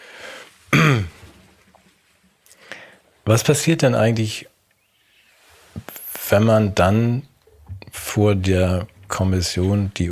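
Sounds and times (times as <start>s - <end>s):
faint hiss: 0.0s - 10.0s
throat-clearing cough: 0.7s - 1.1s
speech: 3.3s - 4.6s, 6.3s - 7.3s, 7.9s - 10.0s.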